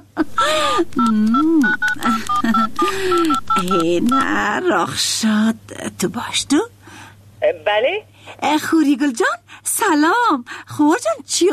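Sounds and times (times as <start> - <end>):
speech: 0.2 - 6.8, 7.4 - 11.5
telephone keypad beeps as a number is dialed: 1.0 - 4.5.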